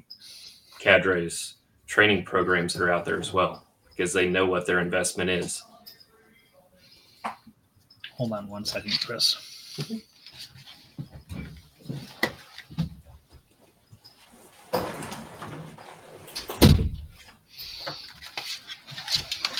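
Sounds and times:
speech: 0.8 - 5.7, 8.2 - 10.6
shuffling and rustling movement: 8.8 - 19.5
office door swinging shut: 14.7 - 17.2.

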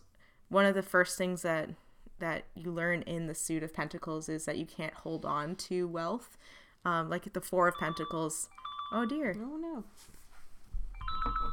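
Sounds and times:
speech: 0.5 - 10.2
phone ringing with a bright electronic ringtone: 7.8 - 9.4, 11.0 - 11.5.

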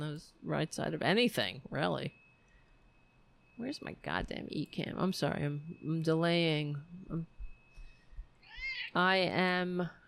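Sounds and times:
speech: 0.0 - 2.2, 3.6 - 7.4, 8.9 - 10.0
faint steady high tone: 0.0 - 10.0
male cat meowing: 8.4 - 8.9.

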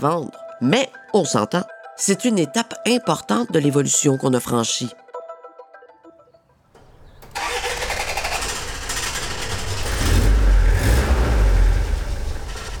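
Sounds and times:
speech: 0.0 - 5.0
old car engine starting and revving: 6.8 - 12.7.

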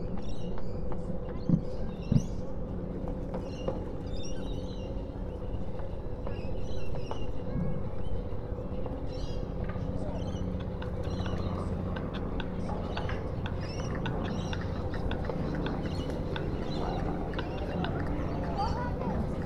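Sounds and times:
voices: 0.1 - 19.4
floating pontoon groaning and rumbling on the water at Man O'War Steps in Sydney: 9.8 - 19.4.

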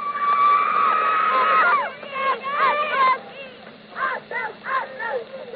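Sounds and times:
cheerleaders and fans whooping and shouting cheers: 0.0 - 3.0
cheerleaders and fans screaming to celebrate a team victory: 0.0 - 5.1.

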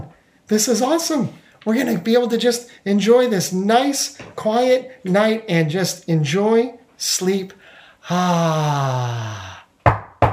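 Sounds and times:
speech: 0.5 - 9.5
long falling groan-like vocal tone: 8.0 - 9.7
knocking on a wooden door: 9.9 - 10.3.

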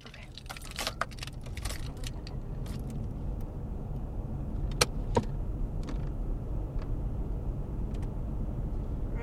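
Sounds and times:
keys jangling: 0.0 - 3.0
car interior rumble: 0.0 - 9.2.

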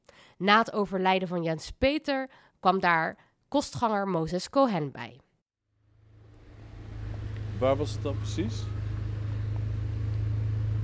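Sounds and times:
speech: 0.4 - 5.2, 7.6 - 8.8
loud car engine rumbling: 5.8 - 10.8.

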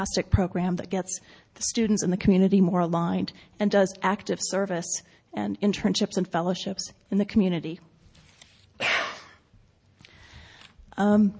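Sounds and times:
speech: 0.0 - 7.9, 11.0 - 11.3
sharp breathy and voiced coughs: 8.8 - 9.5.

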